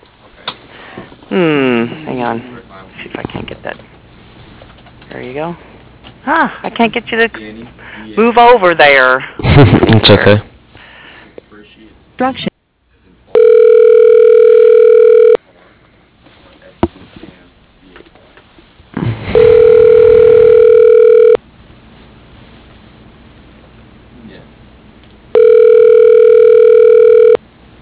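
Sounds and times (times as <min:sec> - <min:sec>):
speech: 0:01.3 - 0:02.5, 0:03.2 - 0:04.0, 0:05.1 - 0:10.5, 0:12.2 - 0:12.5
telephone ringback tone before a voicemail greeting: 0:13.4 - 0:15.4, 0:19.4 - 0:21.4, 0:25.3 - 0:27.4.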